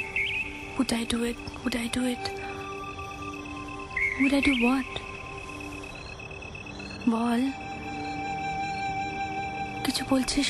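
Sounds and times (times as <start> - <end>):
short high bird chirp: 0.0 - 1.8, 3.2 - 7.7
bird calling in speech-like phrases: 0.0 - 10.2
speech: 0.8 - 2.5, 4.2 - 5.1, 7.0 - 7.6, 9.8 - 10.4.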